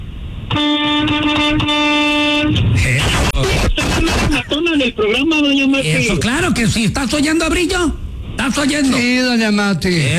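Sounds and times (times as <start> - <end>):
noise: 0.0 - 10.1
car horn honking: 0.5 - 2.8
speech: 0.6 - 0.8, 4.8 - 10.1.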